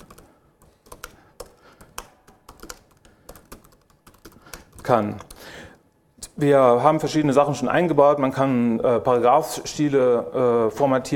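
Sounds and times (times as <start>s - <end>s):
faint keystrokes on a computer keyboard writing in a web browser editor: 0.0s - 5.4s
speech: 4.8s - 5.3s, 6.4s - 11.1s.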